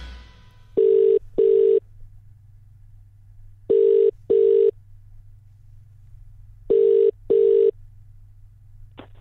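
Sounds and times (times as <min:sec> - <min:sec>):
telephone ringing tone: 0:00.8 - 0:01.8, 0:03.7 - 0:04.7, 0:06.7 - 0:07.7.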